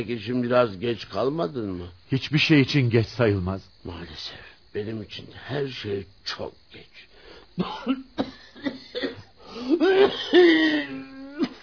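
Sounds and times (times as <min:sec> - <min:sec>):
speech: 0:00.0 - 0:08.4, 0:09.6 - 0:11.5
man coughing in a radio drama: 0:07.6 - 0:11.6
man wheezing: 0:08.3 - 0:11.6.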